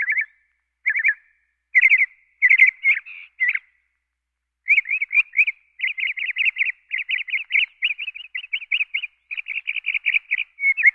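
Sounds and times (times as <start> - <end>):
Northern cardinal giving loud whistled phrases: 0.0 - 3.8, 4.6 - 10.9.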